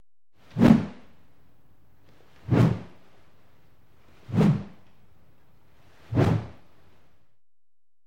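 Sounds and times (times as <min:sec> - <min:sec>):
spear sounds: 0:00.4 - 0:01.1, 0:02.3 - 0:03.0, 0:04.1 - 0:04.8, 0:05.8 - 0:06.7.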